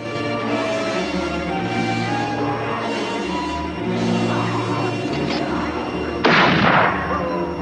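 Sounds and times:
dense steady noise: 0:00.0 - 0:07.6
rifle gunshot fired by a rider on horseback at wolves: 0:06.2 - 0:07.0.

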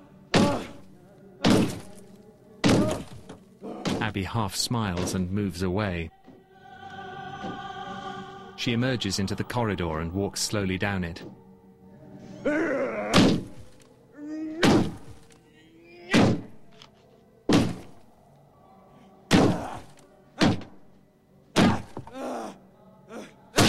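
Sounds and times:
man punching a hole in a wall: 0:00.3 - 0:00.7, 0:01.4 - 0:01.9, 0:02.6 - 0:03.2, 0:13.1 - 0:13.6, 0:14.6 - 0:15.1, 0:16.1 - 0:16.5, 0:17.5 - 0:18.0, 0:19.3 - 0:20.8, 0:21.6 - 0:22.1
speech: 0:04.2 - 0:06.2, 0:08.6 - 0:11.4.

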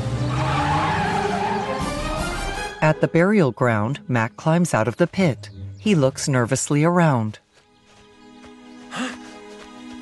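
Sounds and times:
loud continuous truck engine roar: 0:00.0 - 0:02.7
truck tires skidding and squealing: 0:00.0 - 0:02.7
speech: 0:02.8 - 0:07.4.

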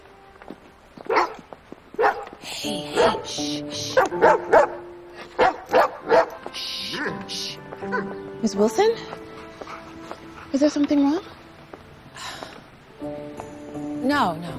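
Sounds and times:
dog barking on a snowy sidewalk: 0:01.1 - 0:01.4, 0:02.0 - 0:02.3, 0:02.9 - 0:03.3, 0:03.9 - 0:04.8, 0:05.4 - 0:06.4, 0:07.9 - 0:08.2
speech: 0:02.4 - 0:04.8, 0:07.9 - 0:09.2, 0:10.5 - 0:11.3, 0:14.1 - 0:14.5.

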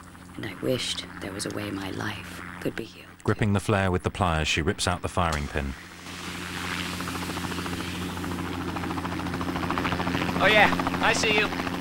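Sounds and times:
helicopter rotor chop over a low engine hum: 0:00.0 - 0:02.9, 0:05.3 - 0:11.7
speech: 0:00.4 - 0:05.9, 0:10.4 - 0:11.7.

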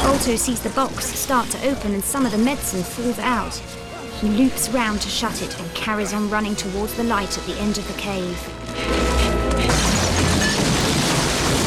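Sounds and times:
speech: 0:00.2 - 0:09.1
stalactites falling and crashing in a cave: 0:08.8 - 0:11.6.

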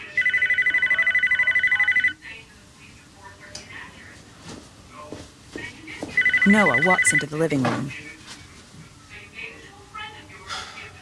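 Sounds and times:
telephone ringing in a living room: 0:00.0 - 0:02.2, 0:06.2 - 0:07.9
speech: 0:06.5 - 0:08.0.

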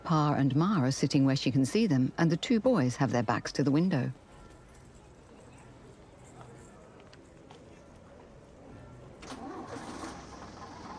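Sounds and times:
speech: 0:00.1 - 0:04.2
bus engine starting up: 0:09.2 - 0:10.9.

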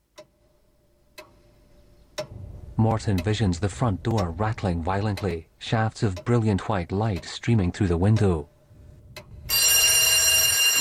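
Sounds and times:
speech: 0:02.2 - 0:08.5
telephone bell ringing in the night: 0:09.5 - 0:10.8.

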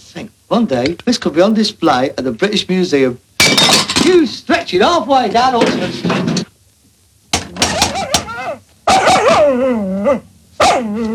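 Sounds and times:
speech: 0:00.1 - 0:06.3, 0:09.4 - 0:11.1
dog barking: 0:07.9 - 0:11.0.

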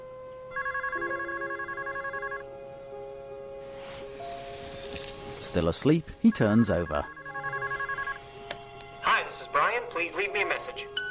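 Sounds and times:
telephone ringing with trilling electronic warble: 0:00.5 - 0:02.5, 0:06.3 - 0:08.2
speech: 0:05.4 - 0:07.2, 0:10.1 - 0:11.0.

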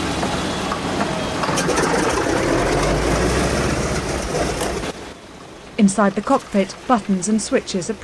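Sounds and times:
B-17 bomber propeller engines starting up with deep rumbling drone: 0:00.0 - 0:05.2
speech: 0:05.8 - 0:08.0.

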